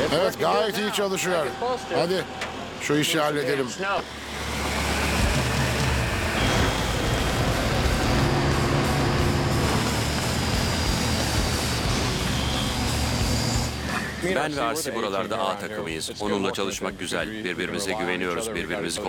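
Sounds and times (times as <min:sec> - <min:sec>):
speech: 0:00.1 - 0:04.5, 0:14.3 - 0:19.0
approaching train rumbling: 0:04.2 - 0:13.9.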